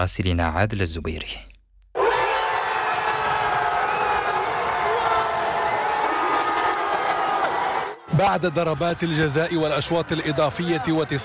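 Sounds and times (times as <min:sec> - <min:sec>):
speech: 0:00.0 - 0:01.5, 0:08.2 - 0:11.2
large crowd of football fans cheering and shouting celebrating a win: 0:02.0 - 0:11.2.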